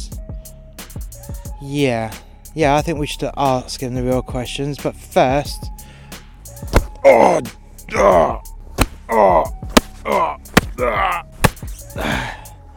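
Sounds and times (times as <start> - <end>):
speech: 1.6 - 5.7, 7.0 - 8.5, 9.1 - 11.3, 12.0 - 12.2
slaps on a person: 6.7 - 7.0, 8.8 - 10.8, 11.4 - 11.8
person groaning in pain: 7.0 - 8.4, 9.0 - 11.4, 12.0 - 12.4.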